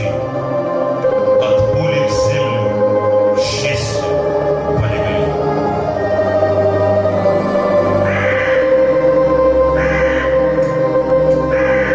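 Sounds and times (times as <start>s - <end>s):
steady sustained musical drone: 0.0s - 11.9s
crow cawing: 8.0s - 10.6s, 11.4s - 11.9s.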